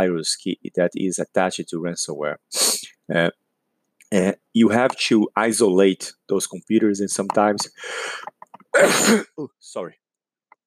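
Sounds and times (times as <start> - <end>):
speech: 0.0 - 3.4, 4.1 - 10.0
person sneezing: 8.7 - 9.4.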